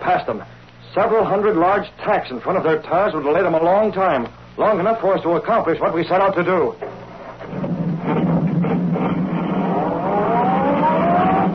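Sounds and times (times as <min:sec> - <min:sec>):
speech: 0:00.0 - 0:06.9
sedan engine revving and accelerating: 0:07.4 - 0:11.5.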